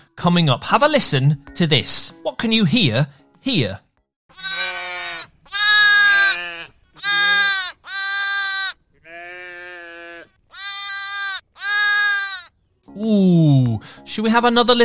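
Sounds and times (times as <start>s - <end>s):
speech: 0.2s - 4.6s, 14.1s - 14.8s
little lambs bleating in springtime: 4.3s - 12.5s.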